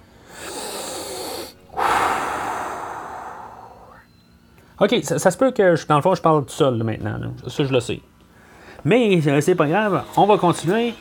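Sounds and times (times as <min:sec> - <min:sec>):
deep breath in: 0:00.2 - 0:04.1
long loud exhale: 0:00.2 - 0:04.1
speech: 0:04.8 - 0:08.1, 0:08.8 - 0:10.9.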